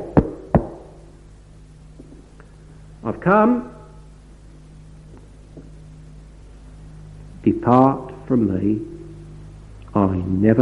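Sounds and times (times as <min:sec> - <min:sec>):
knocking on a door: 0:00.0 - 0:00.8
speech: 0:03.0 - 0:03.8, 0:07.6 - 0:08.9, 0:10.0 - 0:10.6.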